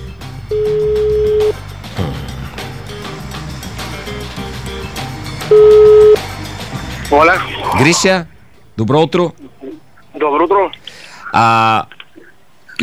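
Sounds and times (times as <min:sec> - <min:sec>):
telephone ringback tones on a telephone line while a call is placed: 0:00.5 - 0:01.6, 0:05.5 - 0:06.2
speech: 0:07.2 - 0:09.5, 0:10.4 - 0:12.0.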